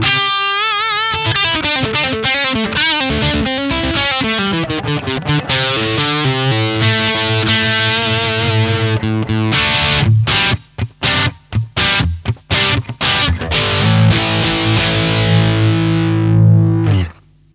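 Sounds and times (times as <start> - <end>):
Gibson electric guitar picked at the bridge: 0.0 - 17.5.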